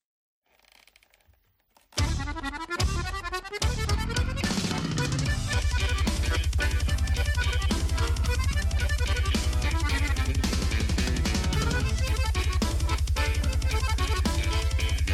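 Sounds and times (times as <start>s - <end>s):
busy erratic drumming: 2.0s - 15.1s
distorted guitars in an experimental metal passage: 2.0s - 15.1s
heavy bass drone: 5.1s - 15.1s.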